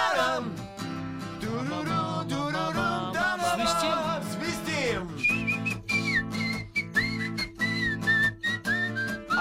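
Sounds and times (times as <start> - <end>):
voices singing wordlessly together in harmony: 0.0 - 0.6, 1.4 - 5.2
expressive human whistling of a bright wavering melody: 5.1 - 9.4.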